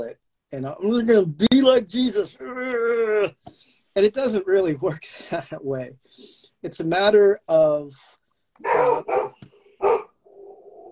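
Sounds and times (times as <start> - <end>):
speech: 0.0 - 9.3
dog barking: 8.6 - 10.9.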